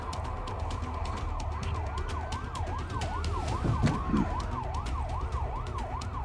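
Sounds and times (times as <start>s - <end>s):
emergency vehicle siren wailing in fast up-and-down cycles: 0.0s - 6.2s
low traffic rumble: 0.0s - 6.2s.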